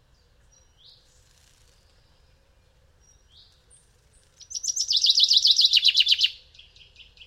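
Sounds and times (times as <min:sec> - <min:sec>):
Common chaffinch Fringilla coelebs song: 0:00.1 - 0:07.2.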